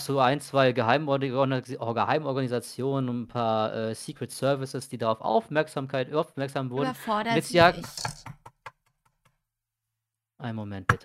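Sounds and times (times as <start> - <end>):
speech: 0.0 - 8.4, 10.4 - 11.0
person knocking on a door: 7.5 - 8.8.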